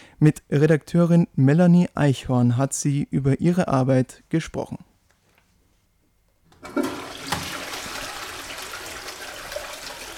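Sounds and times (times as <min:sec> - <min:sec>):
speech: 0:00.2 - 0:04.9
toilet flushing: 0:06.5 - 0:10.1.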